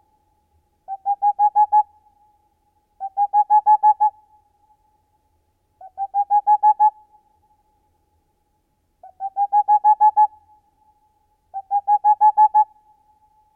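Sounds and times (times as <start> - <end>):
boreal owl giving rapid hollow hoot series: 0.9 - 2.2, 3.0 - 4.3, 5.8 - 7.3, 9.0 - 10.6, 11.5 - 13.2.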